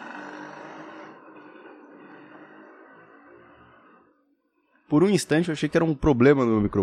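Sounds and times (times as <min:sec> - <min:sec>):
motorcycle roaring past outside: 0:00.0 - 0:04.2
speech: 0:04.9 - 0:06.8.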